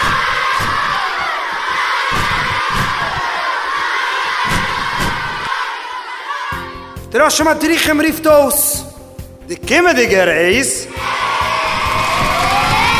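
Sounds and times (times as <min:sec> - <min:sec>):
crowd of children shouting and cheering at a field day: 0:00.0 - 0:07.0, 0:10.9 - 0:12.9
speech: 0:07.1 - 0:08.8, 0:09.5 - 0:10.8.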